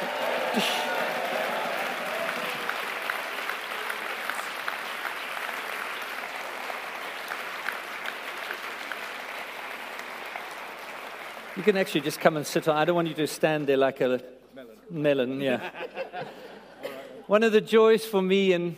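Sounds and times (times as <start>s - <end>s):
large crowd applauding: 0.0s - 13.3s
speech: 0.5s - 0.9s, 11.6s - 16.4s, 17.3s - 18.7s
laughter: 15.4s - 17.3s.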